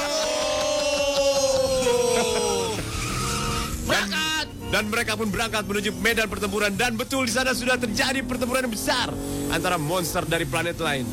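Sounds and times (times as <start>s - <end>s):
laughter: 0.0s - 3.7s
Mio automatic motor scooter engine whining as it drives off: 0.0s - 10.2s
sharp screech: 2.5s - 4.1s
speech: 4.8s - 11.1s.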